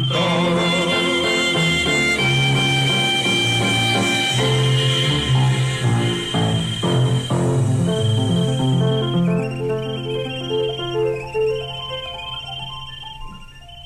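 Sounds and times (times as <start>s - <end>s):
cheerful children's song: 0.0s - 8.4s
high chirping tones: 0.0s - 13.8s.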